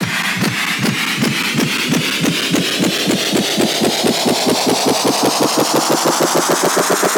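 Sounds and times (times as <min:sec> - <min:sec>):
looped noise: 0:00.0 - 0:07.0.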